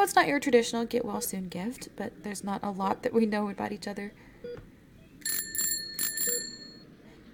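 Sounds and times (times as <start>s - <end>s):
speech: 0.0s - 4.7s
bicycle bells ringing with bright metallic dings: 5.2s - 6.8s.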